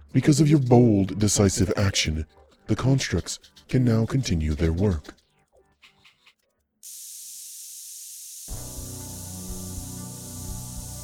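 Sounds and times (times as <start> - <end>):
speech: 0.1 - 5.2
air being pumped out of a spaceship airlock in a video game: 6.8 - 11.0.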